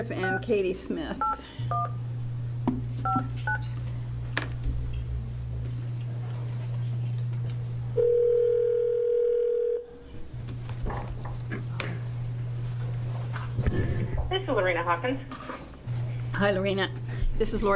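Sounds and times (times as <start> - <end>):
speech: 0.0 - 2.1, 3.0 - 3.8, 14.4 - 15.6, 16.4 - 17.7
steady low hum: 0.0 - 17.7
long level telephone ringing tone on the line: 8.0 - 9.9.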